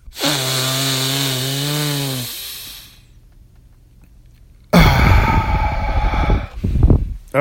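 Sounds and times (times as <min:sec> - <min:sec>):
deep breath through the nose: 0:00.0 - 0:03.2, 0:04.8 - 0:07.2.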